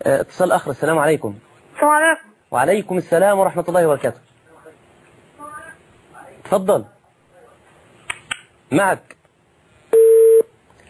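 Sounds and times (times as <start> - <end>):
speech: 0.0 - 4.3, 6.5 - 7.0, 8.7 - 9.2
telephone line tone after a dropped call: 9.9 - 10.5.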